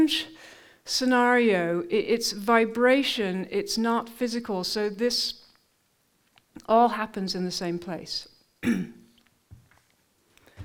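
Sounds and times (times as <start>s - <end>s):
speech: 0.0s - 5.4s, 6.6s - 9.0s
person coughing: 8.6s - 9.1s.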